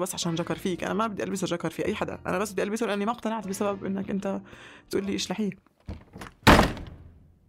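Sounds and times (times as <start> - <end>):
speech: 0.0 - 6.4
door slamming shut: 5.9 - 7.2.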